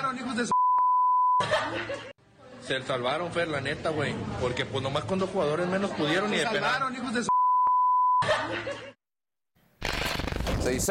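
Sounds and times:
speech: 0:00.1 - 0:00.6, 0:01.7 - 0:02.1, 0:02.7 - 0:07.3, 0:10.6 - 0:10.8
steady loud censor bleep tone over profanity: 0:00.5 - 0:01.4, 0:07.3 - 0:08.2
laughter: 0:01.4 - 0:02.2, 0:08.2 - 0:09.0.

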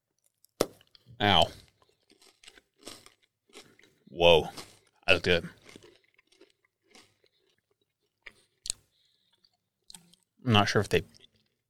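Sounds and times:
chewing crackles of cacao nib brittle: 0:00.2 - 0:11.6
person biting into hard barrel-aged cacao nib brittle: 0:00.8 - 0:08.8
speech: 0:01.2 - 0:01.6, 0:04.1 - 0:05.6, 0:10.5 - 0:11.2.

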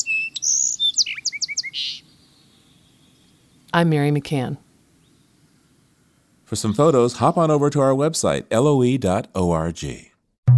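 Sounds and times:
medley of garden birdsong: 0:00.0 - 0:04.2, 0:04.9 - 0:07.7
speech: 0:03.7 - 0:04.7, 0:06.5 - 0:10.1.

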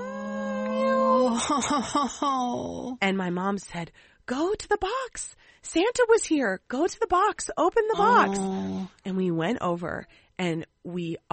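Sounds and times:
person imitating kitten meows: 0:00.0 - 0:01.4, 0:08.0 - 0:08.9
speech: 0:01.3 - 0:11.3.

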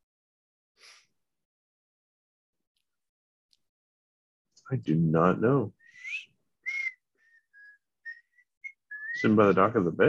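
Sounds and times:
speech: 0:04.7 - 0:05.8, 0:09.2 - 0:10.0
person whistling an off-key melody: 0:05.8 - 0:09.4.

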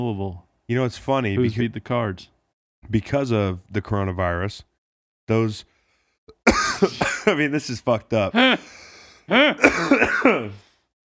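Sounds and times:
speech: 0:00.0 - 0:04.7, 0:05.3 - 0:05.7, 0:06.4 - 0:10.7
dry raspy cough: 0:06.3 - 0:07.4, 0:09.3 - 0:10.6.

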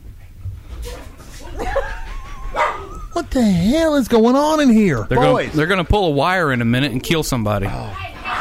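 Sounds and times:
dogs scuffling: 0:00.5 - 0:04.6
laughter: 0:01.4 - 0:05.6
dog whining: 0:01.6 - 0:03.4
speech: 0:03.3 - 0:08.0.

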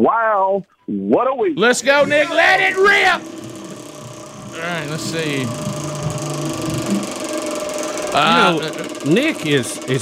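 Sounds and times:
speech: 0:00.0 - 0:03.5, 0:04.6 - 0:05.9, 0:08.2 - 0:10.0
prize wheel being spun, ratcheting clicks: 0:01.8 - 0:10.0.

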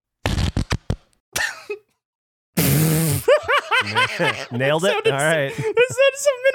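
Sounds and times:
whoopee cushion fart noises: 0:00.2 - 0:01.0, 0:02.6 - 0:03.3
laughter: 0:03.2 - 0:06.5
speech: 0:03.8 - 0:06.5.

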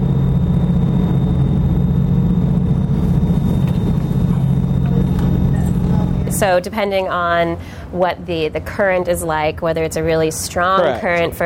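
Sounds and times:
boat diesel generator droning: 0:00.0 - 0:07.8
speech: 0:06.4 - 0:11.4.

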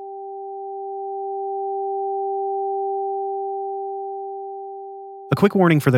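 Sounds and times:
high and low pure electronic sine tones: 0:00.0 - 0:05.4
speech: 0:05.3 - 0:05.9.

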